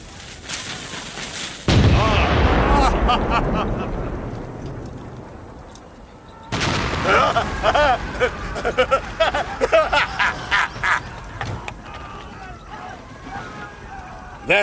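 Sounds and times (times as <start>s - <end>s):
crashing, crumbling debris of barracks: 0.2s - 14.6s
cannon shot hitting barracks: 1.7s - 8.2s
heavy cannon blast: 1.7s - 9.9s
laughter: 2.0s - 4.4s, 7.0s - 14.6s.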